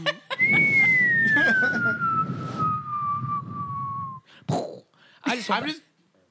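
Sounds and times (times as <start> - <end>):
laughter: 0.0 - 2.0
falling bomb whistle sound effect: 0.4 - 4.3
speech: 5.5 - 5.9.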